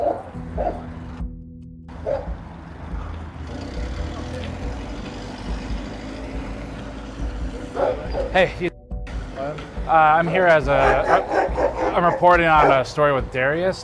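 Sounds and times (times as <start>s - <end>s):
dogs barking at a scrapyard: 0.0s - 1.0s, 1.9s - 2.4s, 7.6s - 8.6s, 10.4s - 13.3s
speech: 8.4s - 8.7s, 9.9s - 11.4s, 12.0s - 13.8s.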